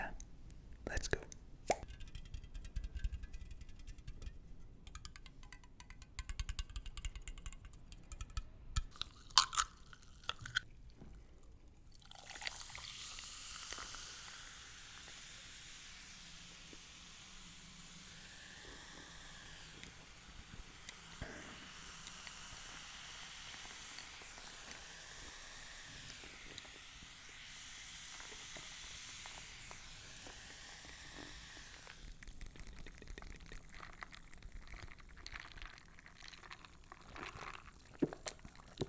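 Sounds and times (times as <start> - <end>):
utensil taps: 1.2 - 9.0
poppadums crunching: 8.9 - 10.7, 32.6 - 38.8
steady hiss: 12.5 - 33.0
faint chewing of lamb bhuna curry with garlic naan: 32.4 - 38.8.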